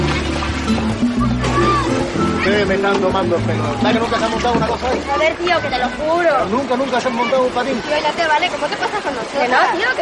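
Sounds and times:
murmur of many people talking and calling: 0.0 - 10.0
waves and surf washing along a busy beach: 0.0 - 10.0
speech: 0.7 - 1.4, 2.5 - 10.0.

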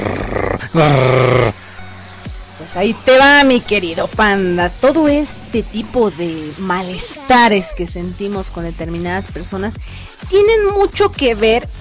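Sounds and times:
low grunt: 0.0 - 1.6
person imitating dogs and cats fighting, snarling and growling: 0.0 - 1.6
speech: 0.8 - 1.5, 2.7 - 11.7.

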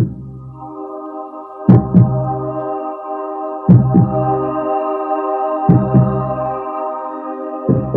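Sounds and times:
steady droning synth hum: 0.0 - 7.9
slow heartbeat thumping in lub-dub beats: 1.7 - 2.3, 3.7 - 4.3, 5.7 - 6.2, 7.7 - 7.9.

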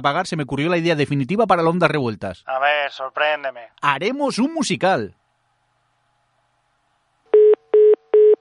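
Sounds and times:
speech: 0.0 - 5.2
telephone tone beeps after a call drops: 7.3 - 8.3.

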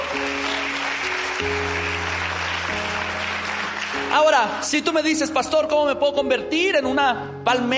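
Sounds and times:
audience applauding: 0.0 - 5.3
speech: 4.2 - 7.7.

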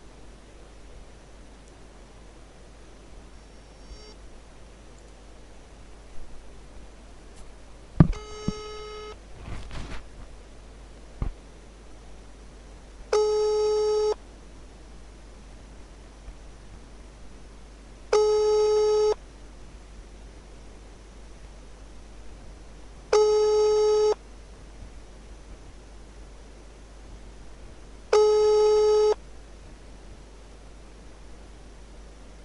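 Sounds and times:
brief beeps and clicks: 8.1 - 9.2
telephone ringback tone while dialling a friend: 8.1 - 9.2, 13.1 - 14.2, 18.1 - 19.2, 23.1 - 24.2, 28.1 - 29.2.

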